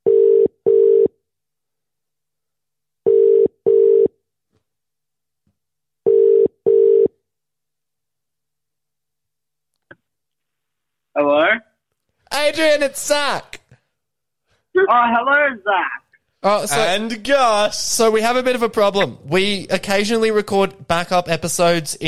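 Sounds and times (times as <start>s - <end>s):
ringing tone of an outgoing phone call: 0.1s - 1.2s, 3.1s - 4.2s, 6.1s - 7.2s
speech: 12.5s - 13.6s, 14.8s - 22.0s.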